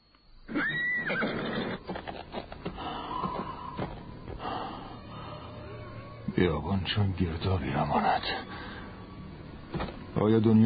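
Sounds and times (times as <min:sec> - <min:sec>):
horse neighing: 0:00.5 - 0:03.8
horse hooves galloping: 0:01.6 - 0:05.0
speech: 0:06.4 - 0:08.7, 0:10.2 - 0:10.6.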